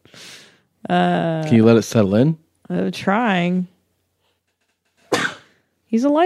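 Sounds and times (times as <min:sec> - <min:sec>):
speech: 0:00.9 - 0:03.7, 0:05.9 - 0:06.2
sneeze: 0:05.1 - 0:05.6.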